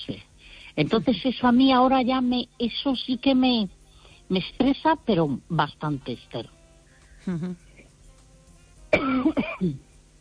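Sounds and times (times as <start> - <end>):
speech: 0.8 - 6.6, 7.2 - 7.6, 9.6 - 9.9
person coughing and throat-clearing: 9.0 - 9.8.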